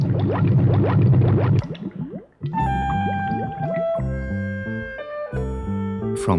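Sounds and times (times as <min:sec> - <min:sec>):
water gurgling and bubbling in buckets refilling: 0:00.0 - 0:03.9
speech: 0:00.3 - 0:02.0
sustained gently shifting musical tones: 0:02.4 - 0:06.3.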